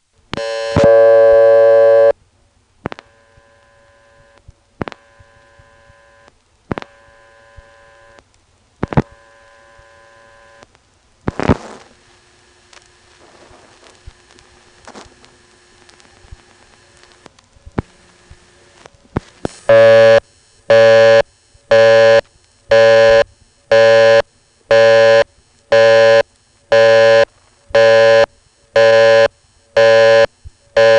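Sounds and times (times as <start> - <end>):
faint hum and crackly telephone line noise: 0.0 - 30.9
loud steady telephone line tone: 0.4 - 2.2, 3.0 - 4.4, 5.0 - 8.2, 8.8 - 10.6, 19.7 - 30.9
telephone busy signal of short tone bursts: 0.4 - 2.2, 19.7 - 30.9.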